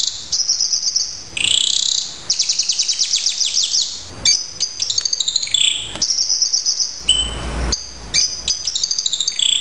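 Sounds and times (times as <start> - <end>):
Horsfield's bush lark song: 0.0 - 9.5
low rushing noise: 7.0 - 8.1.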